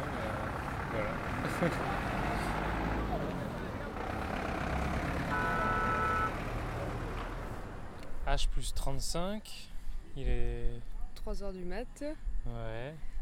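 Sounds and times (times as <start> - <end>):
bus engine rumbling: 0.0 - 9.1
speech: 1.0 - 2.2, 8.4 - 13.1
laughter: 1.2 - 2.6.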